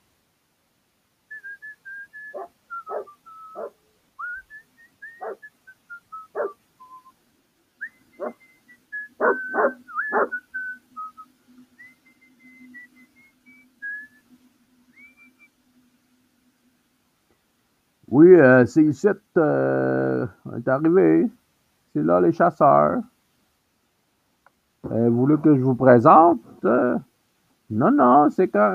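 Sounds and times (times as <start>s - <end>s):
low steady hum: 0.0s - 28.7s
dog barking in short sharp barks: 2.3s - 3.8s, 5.2s - 5.4s, 6.3s - 6.6s, 8.2s - 8.4s, 9.2s - 10.3s
dog whimpering in high drawn-out whines: 2.4s - 3.7s, 5.2s - 5.4s, 6.4s - 6.6s, 9.2s - 10.4s
speech: 18.2s - 21.4s, 22.0s - 23.1s, 24.9s - 27.1s, 27.7s - 28.7s.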